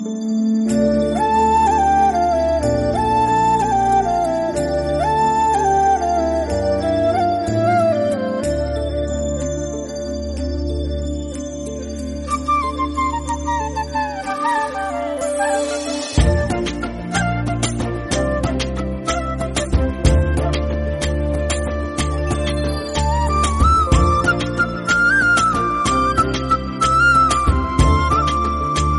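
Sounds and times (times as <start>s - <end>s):
Telugu love background music: 0.0s - 28.9s.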